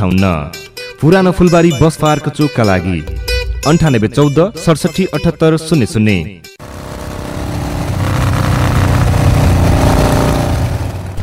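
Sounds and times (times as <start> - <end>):
speech: 0.0 - 6.8
new motorbike engine revving: 6.6 - 11.2.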